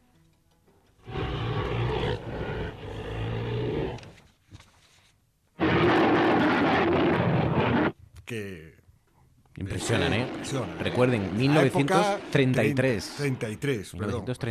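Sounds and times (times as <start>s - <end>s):
designed giant ape roar sound effect created in 1933: 1.0s - 4.2s, 5.6s - 8.0s, 9.7s - 13.6s
speech: 8.3s - 8.8s, 9.6s - 14.4s.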